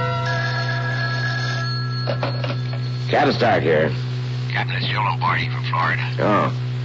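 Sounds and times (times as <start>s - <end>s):
telephone ringing on an outgoing call: 0.2s - 3.5s
speech: 3.2s - 6.7s.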